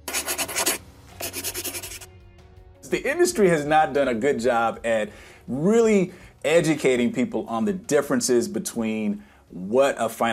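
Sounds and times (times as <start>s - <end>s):
pen writing on paper: 0.0s - 2.1s
speech: 2.9s - 10.3s.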